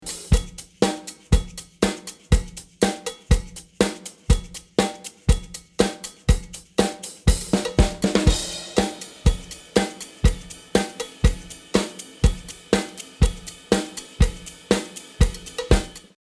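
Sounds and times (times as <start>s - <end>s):
funk drum recording: 0.0s - 16.2s.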